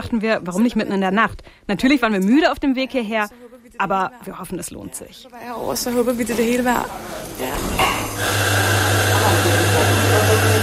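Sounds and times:
speech: 0.0 - 10.6
espresso machine humming and hissing in a foyer: 7.8 - 10.6.

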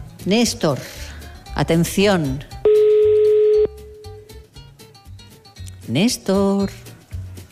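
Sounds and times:
speech: 0.2 - 2.5, 5.9 - 6.9
telephone ringback tone on an outgoing call in Madrid: 2.7 - 4.2.

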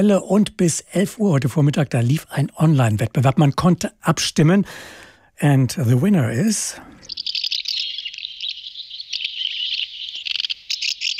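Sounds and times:
speech: 0.0 - 7.0
house martins chattering: 6.4 - 11.1.

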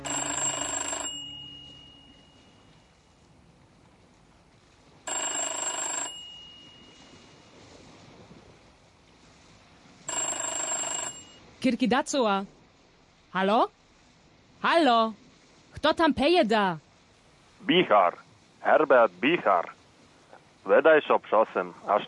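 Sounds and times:
telephone ringing: 0.0 - 2.7, 5.1 - 7.2, 10.1 - 11.4
speech: 11.6 - 12.6, 13.3 - 13.8, 14.6 - 15.2, 15.8 - 16.8, 17.6 - 19.8, 20.7 - 22.0.

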